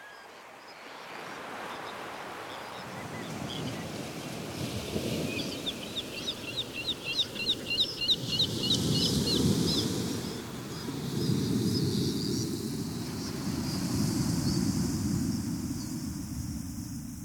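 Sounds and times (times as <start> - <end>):
wind along the shore: 0.0 - 17.2
seabirds calling: 1.2 - 14.8.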